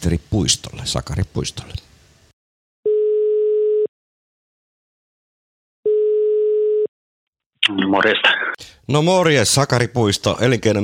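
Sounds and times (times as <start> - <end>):
speech: 0.0 - 1.9, 7.7 - 10.8
telephone ringing tone while a call is being placed: 2.9 - 3.9, 5.8 - 6.9.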